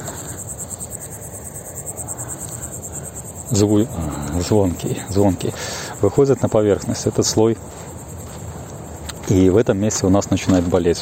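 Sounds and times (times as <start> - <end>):
cricket chirping loudly: 0.0 - 10.9
speech: 3.5 - 7.9, 9.3 - 10.9.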